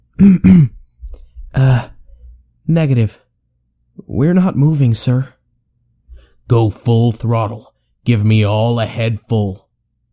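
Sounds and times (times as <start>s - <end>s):
man clearing his throat: 0.1s - 1.0s, 1.6s - 2.0s
speech: 0.2s - 0.8s, 1.5s - 1.9s, 2.7s - 3.2s, 4.0s - 5.4s, 6.5s - 9.6s.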